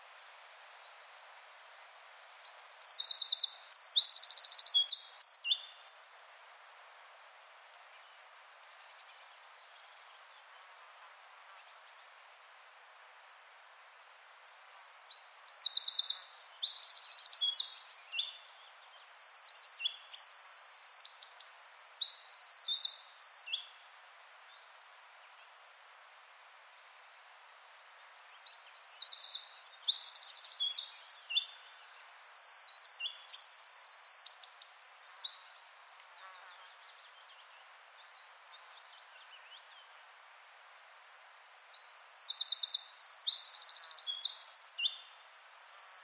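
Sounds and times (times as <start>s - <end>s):
wren singing: 2.1s - 6.3s, 14.7s - 23.7s, 28.1s - 39.1s, 41.4s - 46.0s.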